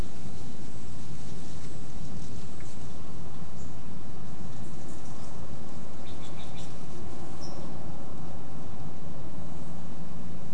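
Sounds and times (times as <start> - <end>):
spotted towhee scratching in dry leaf litter: 0.0 - 8.7
wind through coast live oaks and bay trees: 0.0 - 10.5
thin high chirps: 6.0 - 7.7.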